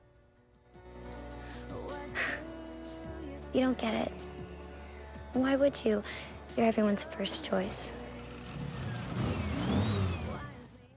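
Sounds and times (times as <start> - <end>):
speech: 3.5 - 4.4, 5.3 - 8.0
vintage candy-apple-red sports car engine rumbling and revving driving out of a garage: 7.9 - 10.7.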